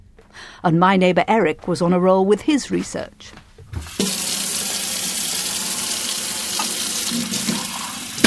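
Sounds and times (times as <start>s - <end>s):
speech: 0.6s - 4.0s
kitchen tap water running into a sink: 3.7s - 8.2s.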